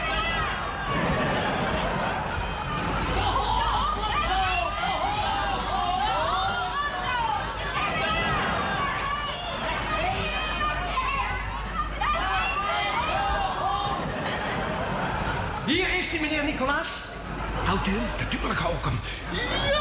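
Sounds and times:
dense crowd roaring and cheering: 0.0 - 19.7
laughter: 0.0 - 19.7.

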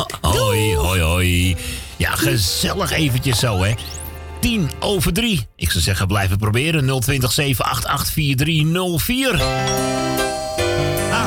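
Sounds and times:
speech: 1.2 - 10.2
bell ringing: 9.4 - 11.2.

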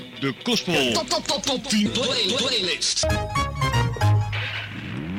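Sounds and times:
speech: 0.2 - 3.4
motor engine starting and revving then idling: 4.3 - 5.1.

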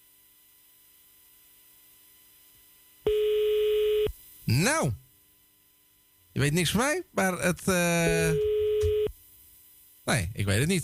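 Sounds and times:
loud steady telephone busy tone on a failed phone call: 3.1 - 4.1, 8.1 - 9.1
speech: 4.5 - 5.0, 6.4 - 8.5, 10.1 - 10.8.

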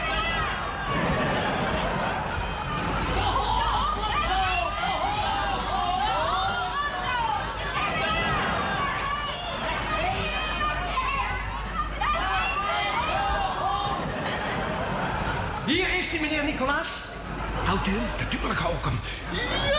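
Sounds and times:
large audience roaring, shouting and cheering: 0.0 - 19.7
laughter: 0.0 - 19.7.

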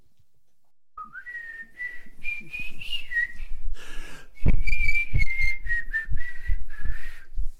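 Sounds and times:
person whistling a melodic tune: 1.0 - 3.5, 4.4 - 7.4.

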